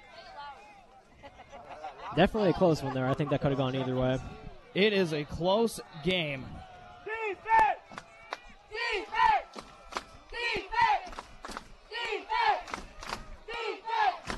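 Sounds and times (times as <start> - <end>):
laughter: 1.0 - 4.4
speech: 2.1 - 6.6
large American football stadium crowd chanting and roaring: 3.8 - 14.3.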